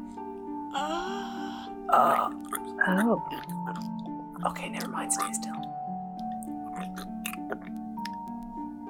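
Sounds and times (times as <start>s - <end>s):
speech: 1.9s - 5.8s
wet crunchy chewing bites: 2.1s - 8.3s.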